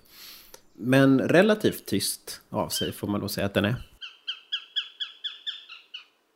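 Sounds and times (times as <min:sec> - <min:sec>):
speech: 0:00.8 - 0:03.9
bird of prey calling with sharp harsh squawking notes: 0:02.7 - 0:03.0, 0:04.0 - 0:06.2.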